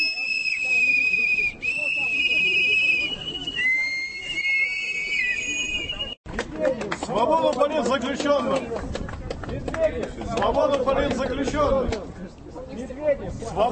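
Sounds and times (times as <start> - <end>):
protest crowd whistling outdoors: 0.0 - 6.2
dense murmur of protest crowd noise outdoors: 0.0 - 13.7
speech: 7.2 - 13.7.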